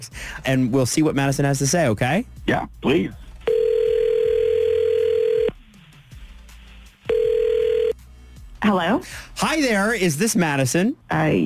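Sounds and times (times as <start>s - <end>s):
speech: 0.0s - 3.2s, 8.6s - 11.4s
electronic telephone ringback tone: 3.4s - 5.5s, 7.1s - 8.0s.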